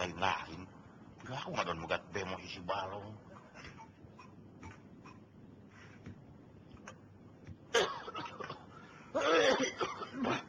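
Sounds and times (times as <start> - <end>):
speech: 0.0 - 0.6, 1.3 - 3.8
person coughing: 7.7 - 10.4.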